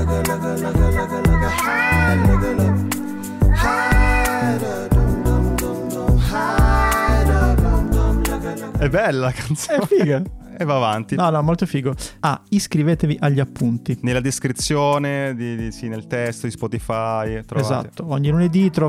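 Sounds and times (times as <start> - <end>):
loud dense music track with a steady beat: 0.0 - 12.1, 12.9 - 18.8
sampled cat meows chopped and looped over a beat: 1.6 - 2.4
speech: 8.8 - 18.8
laughter: 9.4 - 10.3.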